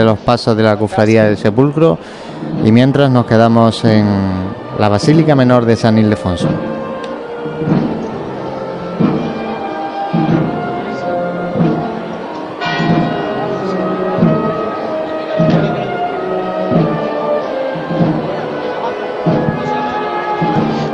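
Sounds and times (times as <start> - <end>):
speech: 0.0 - 6.8
murmur of voices: 0.0 - 20.9
church bell tolling: 2.4 - 20.9.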